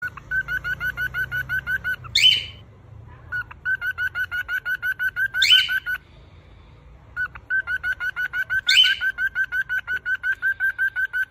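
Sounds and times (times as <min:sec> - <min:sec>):
cockatiel chirping in quick rhythmic runs: 0:00.0 - 0:02.6, 0:03.3 - 0:06.0, 0:07.2 - 0:11.2.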